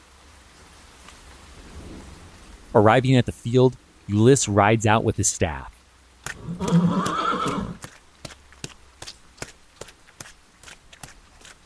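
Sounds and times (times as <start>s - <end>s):
heavy rain: 0.0s - 11.6s
speech: 2.8s - 5.8s.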